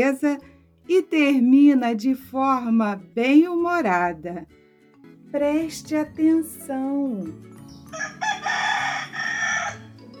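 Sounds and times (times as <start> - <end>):
speech: 0.0 - 4.6, 5.3 - 8.6
rooster crowing: 7.9 - 10.0.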